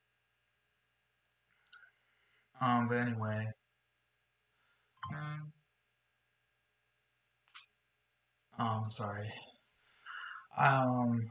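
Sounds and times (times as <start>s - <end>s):
speech: 2.6s - 3.6s, 5.1s - 5.6s, 8.6s - 9.5s, 10.6s - 11.2s
loud electronic censor bleep tone: 5.0s - 5.5s.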